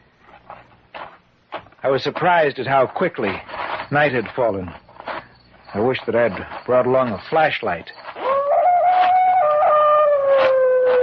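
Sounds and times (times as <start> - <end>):
speech: 1.8 - 4.8, 5.7 - 8.1
distant dog howling across a lake at night: 8.2 - 11.0.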